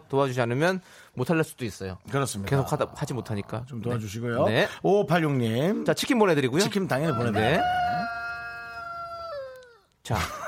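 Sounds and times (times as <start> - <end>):
speech: 0.1 - 8.2, 10.1 - 10.4
rooster crowing: 7.1 - 9.8.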